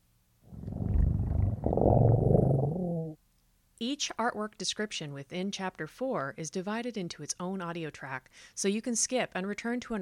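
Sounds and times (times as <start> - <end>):
mountain lion purring: 0.5 - 3.2
speech: 3.8 - 9.9.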